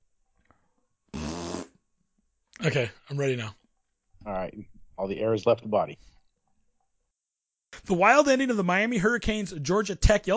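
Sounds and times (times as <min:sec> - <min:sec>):
fart: 0:01.1 - 0:01.8
speech: 0:02.6 - 0:03.6, 0:04.2 - 0:06.2, 0:07.8 - 0:10.3.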